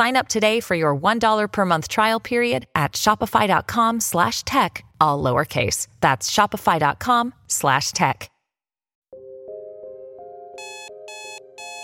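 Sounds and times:
speech: 0.0 - 8.3
electronic alarm clock ringing with rising tonal melody: 10.6 - 11.8.

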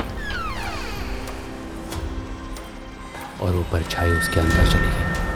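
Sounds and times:
room door slowly creaking open: 0.2 - 2.1
steady low rumble: 0.2 - 3.0
speech: 3.4 - 5.2.

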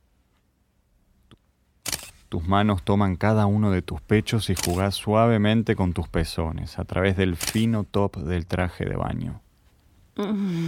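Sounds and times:
camera shutter clicking while photos are taken: 1.8 - 2.2, 4.6 - 4.8, 7.4 - 7.7
speech: 2.3 - 9.4, 10.2 - 10.6.

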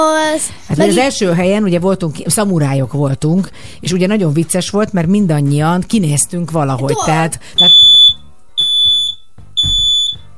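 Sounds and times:
speech: 0.0 - 7.9
smoke alarm shrieking in loud piercing high-pitched beeps: 7.6 - 10.3.

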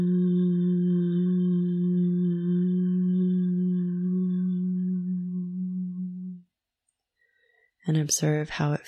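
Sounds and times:
closed-mouth hum chanted during a breathing exercise: 0.0 - 6.5
speech: 7.9 - 8.8.

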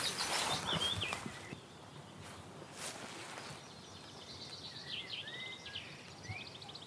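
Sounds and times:
rustling: 0.0 - 1.6, 2.2 - 3.6
willow warbler singing descending phrase in scrubby willow area: 0.0 - 2.6, 3.4 - 6.8
breezy outdoor noise: 0.0 - 6.8.

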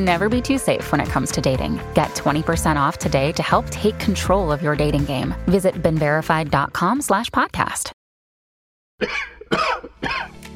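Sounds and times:
speech: 0.0 - 8.0, 9.0 - 10.4
harsh raspy coughs: 9.0 - 10.5.

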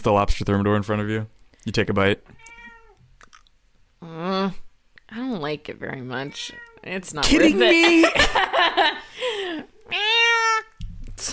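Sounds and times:
speech: 0.0 - 2.5, 4.0 - 11.3
foster cat meowing: 2.4 - 3.0, 6.2 - 6.9, 9.8 - 10.8.

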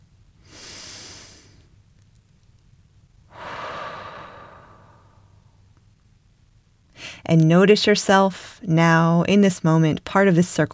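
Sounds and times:
deep breathing: 0.4 - 1.7, 3.3 - 5.6
speech: 7.2 - 10.7.

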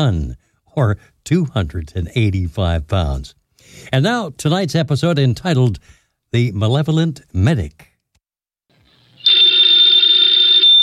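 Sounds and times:
speech: 0.0 - 7.9
telephone bell ringing: 9.2 - 10.8.

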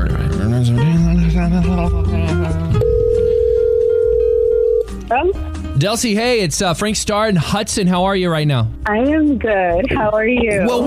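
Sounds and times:
speech: 0.5 - 2.8, 5.1 - 10.8
phone dialing a number with stepped electronic tones: 2.8 - 4.9.

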